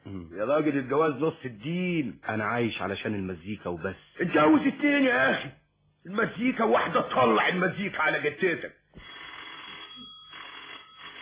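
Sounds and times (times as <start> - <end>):
speech: 0.4 - 8.8
telephone bell ringing: 9.0 - 11.2.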